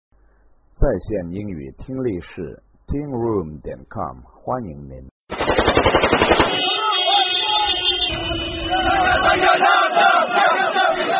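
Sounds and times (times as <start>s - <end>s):
speech: 0.8s - 5.1s
automatic rifles fired into the air by rebels: 5.3s - 6.9s
rebels chanting after capturing a strategic town: 6.7s - 11.1s.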